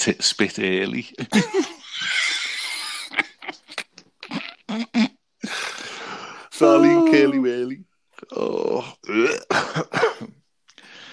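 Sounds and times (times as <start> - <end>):
speech: 0.0 - 2.2, 6.6 - 10.3
laughter: 1.2 - 3.9, 6.6 - 7.5
person coughing and clearing throat: 1.3 - 1.8, 9.2 - 10.4.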